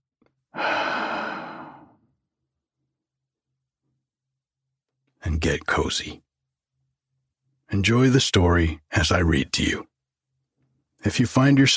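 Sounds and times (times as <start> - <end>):
deep breath: 0.5 - 2.1
speech: 5.4 - 6.3, 7.7 - 9.9, 11.0 - 11.7.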